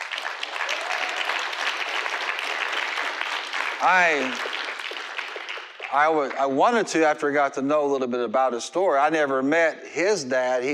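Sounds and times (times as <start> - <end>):
audience applause: 0.0 - 6.6
person whooping: 0.6 - 1.4
speech: 3.8 - 4.5, 5.9 - 10.7.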